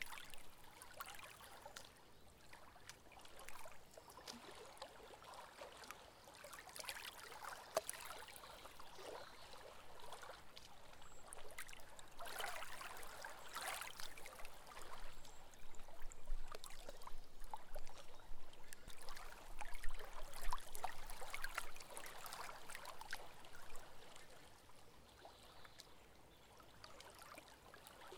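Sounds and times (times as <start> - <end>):
small waves lapping at the edge of Loch Lomond in Scotland: 0.0 - 28.1.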